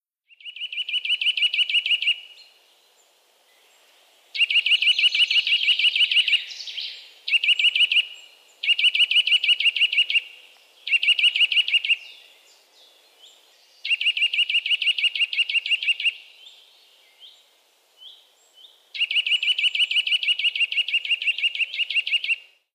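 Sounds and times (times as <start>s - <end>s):
woodpecker: 0.3s - 2.2s, 4.4s - 6.4s, 7.3s - 12.1s, 13.8s - 16.2s, 19.0s - 22.5s.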